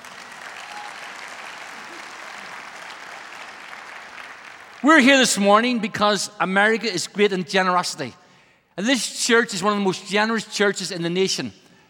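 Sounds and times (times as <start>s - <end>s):
large indoor church audience applauding: 0.0s - 4.9s
speech: 4.8s - 8.2s, 8.8s - 11.6s.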